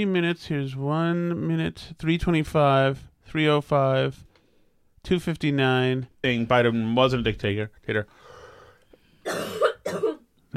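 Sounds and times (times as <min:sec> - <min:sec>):
speech: 0:00.0 - 0:04.3, 0:05.0 - 0:08.3
distant cough: 0:09.2 - 0:10.3.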